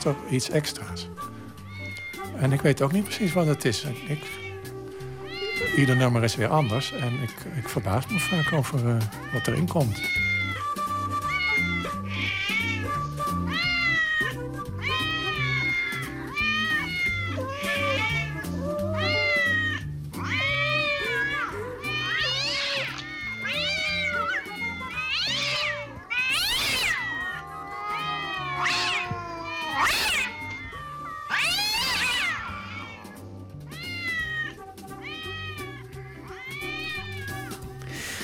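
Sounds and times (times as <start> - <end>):
speech: 0.0 - 1.3, 2.4 - 4.4, 5.6 - 10.3
several cats meowing: 0.0 - 38.2
steady low music: 0.0 - 38.2.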